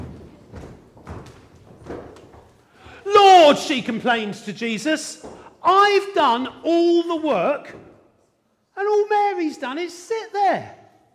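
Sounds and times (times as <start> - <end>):
heavy feet stomping hard on a floor: 0.0 - 3.0
speech: 3.5 - 7.9, 8.8 - 10.8.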